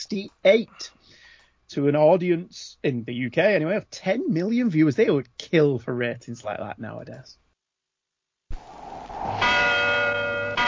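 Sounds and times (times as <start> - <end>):
speech: 0.0 - 1.0, 1.7 - 7.4
large bell ringing out over a deserted village: 9.4 - 10.6.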